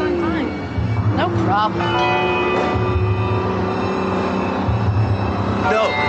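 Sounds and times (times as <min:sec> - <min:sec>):
bus engine speeding up: 0:00.0 - 0:06.0
speech: 0:01.2 - 0:02.9, 0:05.6 - 0:06.0.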